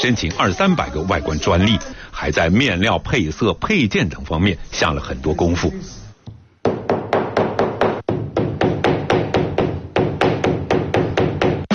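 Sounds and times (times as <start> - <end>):
speech: 0.0 - 6.0
hammer pounding flowers and leaves: 6.6 - 11.7.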